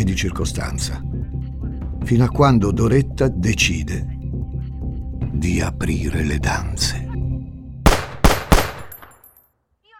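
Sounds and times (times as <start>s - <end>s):
speech: 0.1s - 1.2s, 2.0s - 4.1s, 5.4s - 7.0s
pistol shots: 7.9s - 9.3s.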